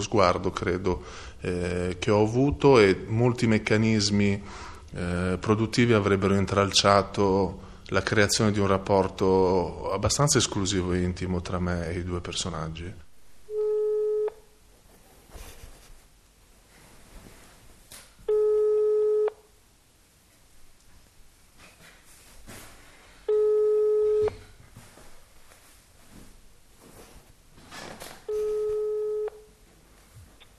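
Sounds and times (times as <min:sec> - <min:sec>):
speech: 0:00.0 - 0:13.0
telephone ringback tone electronic beep heard through a phone: 0:13.5 - 0:14.4, 0:18.3 - 0:19.4, 0:23.3 - 0:24.4, 0:28.3 - 0:29.5.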